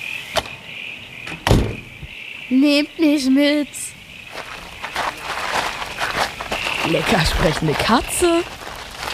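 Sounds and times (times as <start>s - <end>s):
insects chirping: 0.0s - 9.1s
door pulled shut with a solid low thud: 1.2s - 2.0s
speech: 2.5s - 3.8s, 6.9s - 8.6s.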